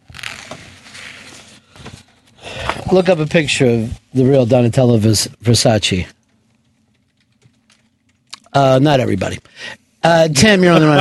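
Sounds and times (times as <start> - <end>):
low steady hum: 0.0 - 10.9
speech: 2.9 - 6.2, 8.5 - 10.9
typing on a computer keyboard: 6.6 - 8.5
laughter: 10.6 - 10.9.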